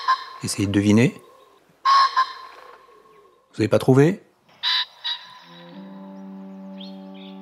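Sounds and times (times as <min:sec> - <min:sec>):
pheasant squawks: 0:00.0 - 0:03.5, 0:04.5 - 0:05.7
speech: 0:00.1 - 0:01.3, 0:03.6 - 0:04.3
low musical tone: 0:05.3 - 0:07.3.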